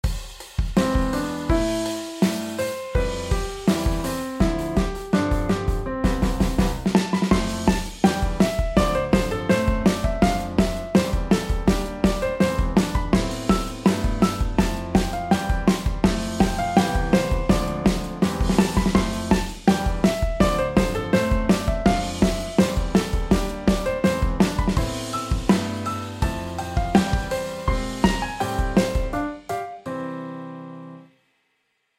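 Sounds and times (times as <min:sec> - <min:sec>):
drum hits: 0:00.0 - 0:29.3.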